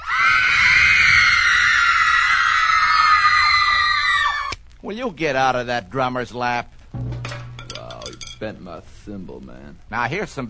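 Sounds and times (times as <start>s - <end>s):
teenage girls shrieking played from a screaming machine: 0.0s - 4.6s
speech: 4.9s - 7.1s, 8.4s - 10.4s.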